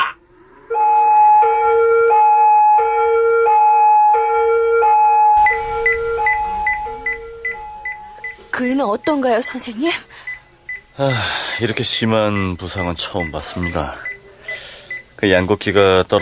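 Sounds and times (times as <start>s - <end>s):
ambulance siren: 0.4s - 9.2s
rumbling engine-like noise: 5.4s - 9.1s
speech: 9.0s - 10.3s, 11.0s - 14.1s, 15.2s - 16.2s.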